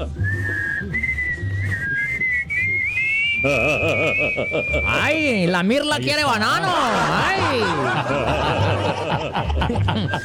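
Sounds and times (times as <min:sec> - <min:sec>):
person whistling a tune: 0:00.1 - 0:05.4, 0:09.9 - 0:10.2
laughter: 0:03.3 - 0:05.4, 0:06.3 - 0:10.2
speech: 0:03.4 - 0:10.2.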